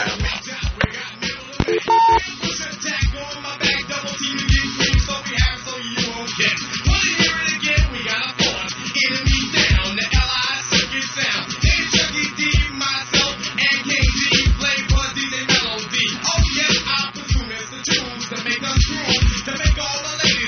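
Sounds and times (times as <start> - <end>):
dense loud music-like sound: 0.0 - 20.4
touch-tone telephone dialing beeps while redialing a call: 1.6 - 2.2.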